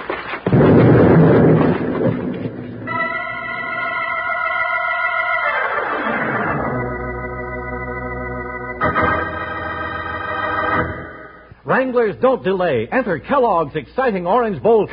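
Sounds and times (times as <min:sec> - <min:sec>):
booming explosion of a bag with a burning fuse in a cave: 0:00.4 - 0:04.4
sustained brassy musical chords: 0:02.9 - 0:11.6
speech: 0:11.8 - 0:14.9.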